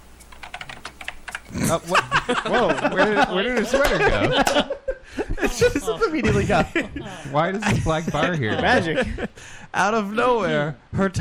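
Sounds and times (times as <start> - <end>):
rapid keyboard typing with plastic key clicks: 0.2 - 1.6
laughter: 1.6 - 9.5
speech: 1.7 - 11.1.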